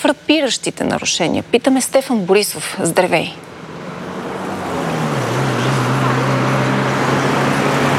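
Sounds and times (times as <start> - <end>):
speech: 0.0 - 3.5
road traffic roar at a Sofia city exit: 0.9 - 7.9
low engine drone of heavy vehicles: 3.3 - 7.9.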